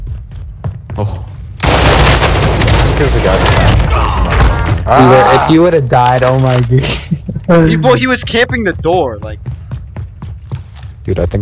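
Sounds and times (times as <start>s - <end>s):
speech: 1.0s - 1.3s, 3.0s - 9.5s, 11.1s - 11.3s
video-game rapid automatic gunfire: 1.6s - 3.8s
video-game gunshots: 1.6s - 4.9s.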